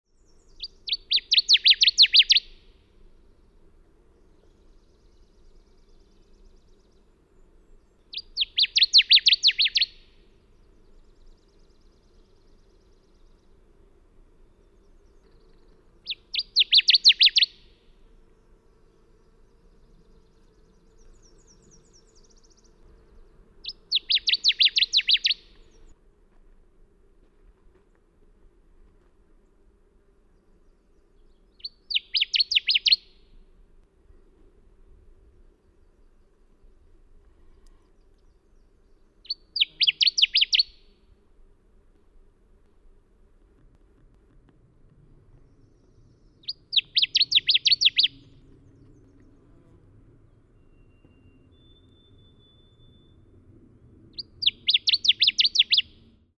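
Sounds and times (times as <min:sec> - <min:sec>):
Connecticut warbler songs: 0:00.2 - 0:02.5, 0:08.1 - 0:10.0, 0:15.0 - 0:17.6, 0:20.2 - 0:25.9, 0:31.6 - 0:33.1, 0:39.2 - 0:40.8, 0:45.4 - 0:49.4, 0:54.2 - 0:56.0.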